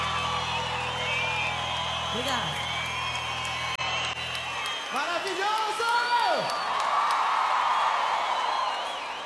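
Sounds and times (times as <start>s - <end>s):
whoops from the crowd: 0.0s - 5.0s, 5.9s - 9.2s
crowd clapping and cheering: 0.0s - 9.2s
whistles from the crowd: 0.8s - 5.1s, 6.4s - 6.9s, 8.4s - 9.2s
speech: 2.2s - 2.7s.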